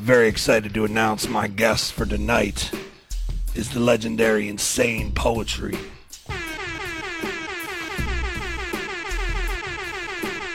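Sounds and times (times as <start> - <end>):
speech: 0.0 - 2.8, 3.6 - 6.0
air horn sound effect blasts: 6.3 - 10.5.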